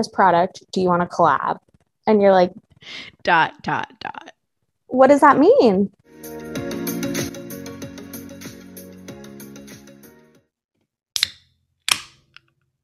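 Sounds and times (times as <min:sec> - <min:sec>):
speech: 0:00.0 - 0:04.3, 0:04.9 - 0:06.6
music: 0:06.0 - 0:10.5.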